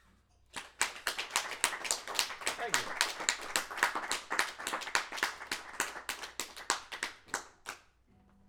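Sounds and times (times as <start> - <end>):
applause recorded with mic preamp: 0.5 - 7.9.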